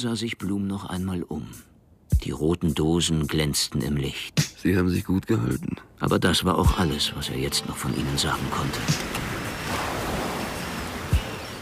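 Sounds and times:
speech: 0.0s - 9.3s
sea waves breaking and foaming over buoys, rubble and sand on a beach: 7.0s - 11.6s
thin steady rain: 7.7s - 11.6s.

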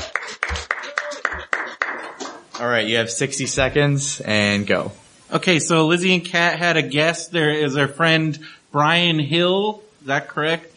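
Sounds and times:
people clapping in a round of applause: 0.0s - 2.8s
speech: 2.6s - 10.7s.

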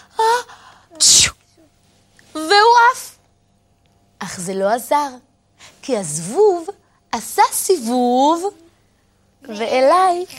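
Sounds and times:
person sneezing: 0.9s - 1.4s
speech: 4.4s - 8.6s, 9.4s - 10.3s.

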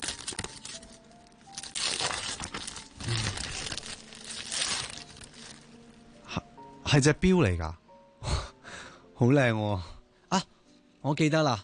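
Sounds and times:
gift wrapping paper crinkling as a package is opened: 0.0s - 6.0s
speech: 6.9s - 7.8s, 9.2s - 11.6s.

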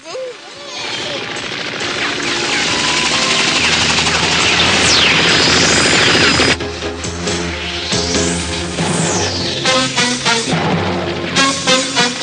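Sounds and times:
helicopter rotor roaring during an animated chase: 0.3s - 12.2s
whooshing sweep: 3.6s - 12.2s.

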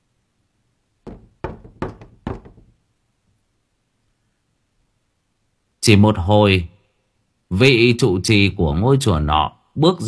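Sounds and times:
gentle knocking on a door of a room at the back of a temple: 1.1s - 2.8s
speech: 5.8s - 6.7s, 7.5s - 10.0s.

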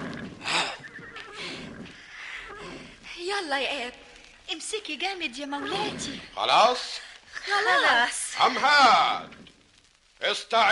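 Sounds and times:
horse neighing: 0.0s - 3.0s, 5.6s - 6.6s
rustling and fluttering: 0.0s - 10.4s
speech: 3.3s - 9.4s, 10.2s - 10.6s.

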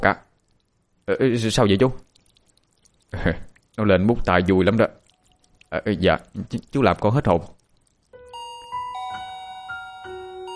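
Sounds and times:
speech: 0.0s - 0.2s, 1.1s - 2.1s, 3.1s - 5.0s, 5.7s - 7.6s
gate doorbell chime: 8.2s - 10.5s.

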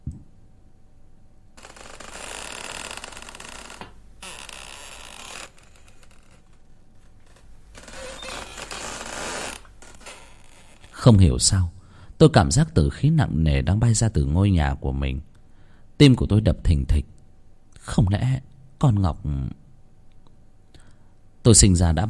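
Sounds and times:
open gate leaf swinging and creaking in the wind at night: 1.6s - 11.1s
speech: 11.0s - 15.3s, 16.0s - 17.1s, 17.9s - 19.6s, 21.5s - 22.0s.

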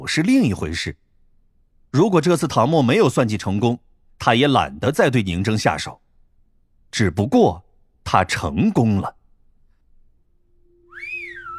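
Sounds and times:
speech: 0.0s - 1.0s, 1.9s - 6.0s, 6.9s - 9.2s
loud whistle blown through fingers curled in the mouth: 10.7s - 11.5s.

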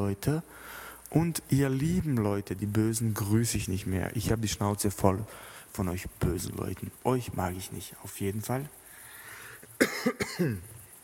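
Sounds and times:
speech: 0.0s - 8.8s, 9.8s - 10.8s
person coughing: 9.8s - 10.7s.

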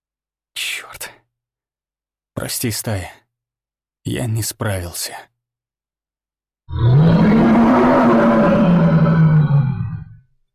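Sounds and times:
speech: 0.8s - 1.2s, 2.4s - 3.2s, 4.0s - 5.3s
deafening primal roar from a huge beast: 6.7s - 10.2s.

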